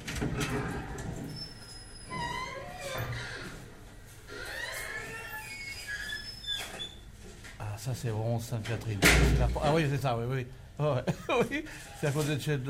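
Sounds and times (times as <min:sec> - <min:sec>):
door creaking open: 0:00.0 - 0:07.5
speech: 0:07.8 - 0:12.6.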